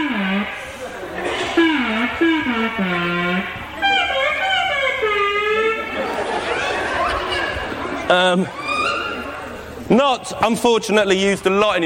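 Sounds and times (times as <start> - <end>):
gliding wavering electronic instrument tone imitating a voice saying hello: 0.0 - 6.1
laughter: 0.6 - 2.7, 5.2 - 9.7
speech: 8.1 - 8.6, 9.9 - 11.8.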